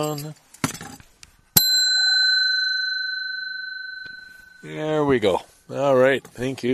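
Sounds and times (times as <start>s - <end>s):
speech: 0.0s - 0.5s, 4.6s - 6.7s
small hand bell ringing: 1.6s - 5.0s.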